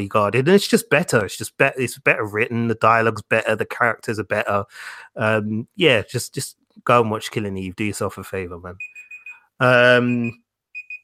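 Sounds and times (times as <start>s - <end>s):
speech: 0.0s - 9.0s, 9.6s - 10.4s
alarm clock beeping with short high electronic tones: 8.8s - 11.0s.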